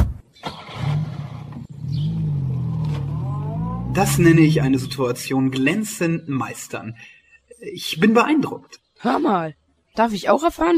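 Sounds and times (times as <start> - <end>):
car engine pulling away from a stop: 0.4 - 6.7
speech: 4.0 - 10.7.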